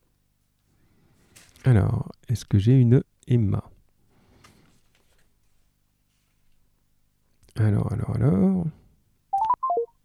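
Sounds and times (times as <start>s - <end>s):
speech: 1.6s - 3.7s, 7.6s - 8.8s
electronic telephone keypad tones: 9.4s - 9.9s.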